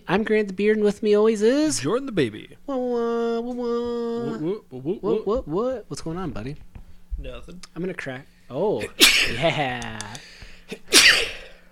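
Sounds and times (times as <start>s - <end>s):
speech: 0.2s - 11.3s
person sneezing: 8.8s - 11.7s.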